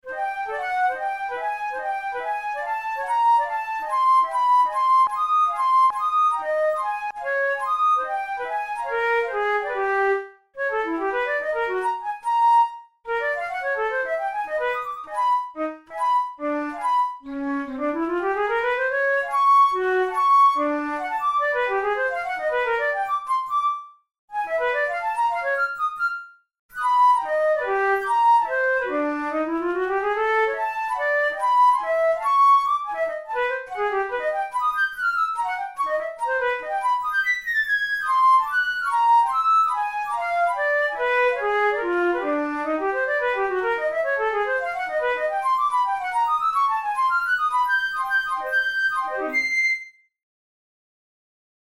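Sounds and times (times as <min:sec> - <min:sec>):
flute solo studies: 0:00.1 - 0:50.1.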